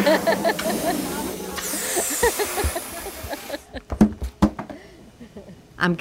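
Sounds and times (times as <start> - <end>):
helium tank hissing while inflating balloons: 0.0 - 3.7
voices murmuring: 0.0 - 3.9
laughter: 0.0 - 4.0, 4.8 - 5.7.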